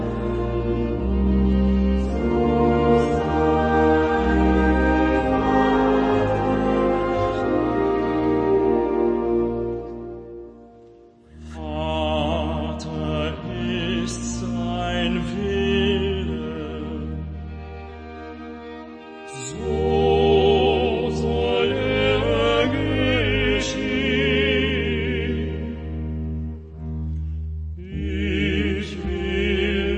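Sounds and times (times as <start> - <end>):
passion chant singing: 0.0 - 10.6, 11.3 - 26.9, 27.8 - 29.9.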